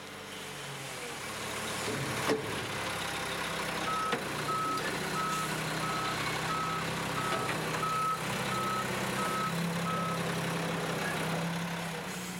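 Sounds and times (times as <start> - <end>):
garbage truck engine rumbling: 1.1 - 12.3
garbage truck reversing alarm beeping: 3.9 - 10.2.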